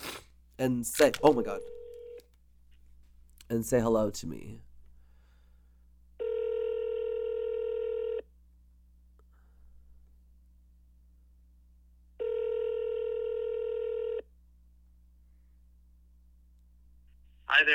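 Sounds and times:
speech: 0.6 - 1.8, 3.5 - 4.7
phone line ringing on a call: 1.6 - 2.2, 6.2 - 8.2, 12.2 - 14.2.

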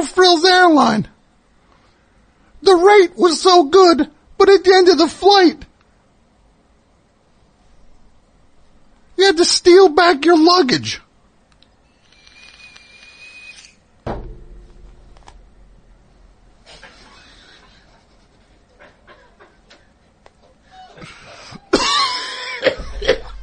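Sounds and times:
speech: 0.0 - 1.1, 2.6 - 5.7, 9.2 - 11.0
person coughing: 21.7 - 23.4.

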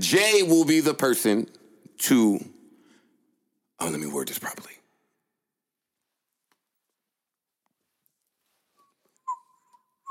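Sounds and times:
speech: 0.1 - 2.6, 3.8 - 4.8
person whistling softly and idly: 8.8 - 10.0.

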